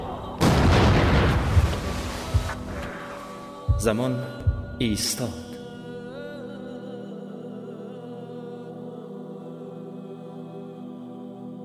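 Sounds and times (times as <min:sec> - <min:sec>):
single loud gunshot with tail: 0:00.4 - 0:03.1
speech: 0:03.8 - 0:05.4.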